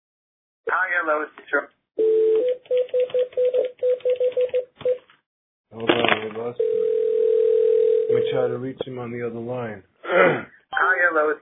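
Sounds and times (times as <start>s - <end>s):
speech: 0.7s - 2.1s, 2.7s - 5.0s, 5.7s - 7.1s, 8.1s - 11.3s
phone dialing beeps: 2.0s - 5.0s, 6.6s - 8.3s.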